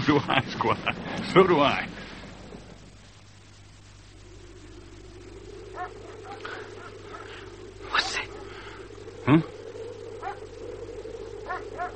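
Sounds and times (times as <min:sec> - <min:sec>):
speech: 0:00.0 - 0:02.2, 0:09.3 - 0:09.5
steady low rumble: 0:00.0 - 0:11.9
police dogs barking: 0:05.8 - 0:06.6, 0:11.5 - 0:11.9.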